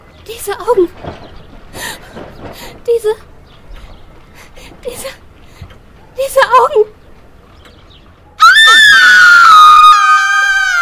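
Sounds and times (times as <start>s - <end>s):
speech: 0.3s - 1.2s, 2.9s - 3.3s, 4.8s - 5.2s, 6.2s - 7.0s
girl screaming in fright: 8.4s - 10.8s.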